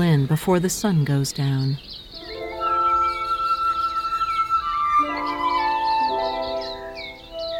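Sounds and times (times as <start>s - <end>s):
speech: 0.0s - 2.0s
birds chirping and twittering in a forest beside a campground before sundown: 0.0s - 7.5s
sustained mellow musical chords: 2.2s - 7.5s.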